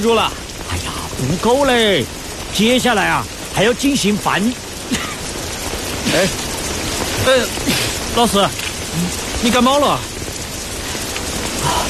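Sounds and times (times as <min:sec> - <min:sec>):
speech: 0:00.0 - 0:05.0, 0:06.1 - 0:06.5, 0:07.2 - 0:10.1
steady rain falling: 0:00.0 - 0:11.8.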